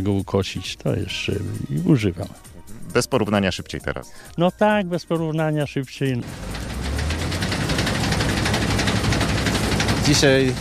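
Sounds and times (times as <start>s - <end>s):
speech: 0.0s - 6.5s, 10.1s - 10.5s
heavy 1970s combine harvester engine running: 6.2s - 10.5s
rapid mechanical knocking: 6.2s - 10.5s.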